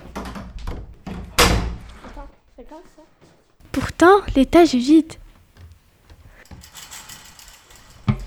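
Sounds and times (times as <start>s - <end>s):
door slamming shut with a sharp bang: 0.0s - 2.2s
speech: 2.7s - 5.2s.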